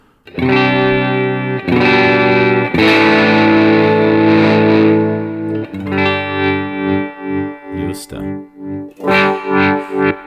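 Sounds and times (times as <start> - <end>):
distorted electric guitar with volume tremolo effect: 0.0 - 10.2.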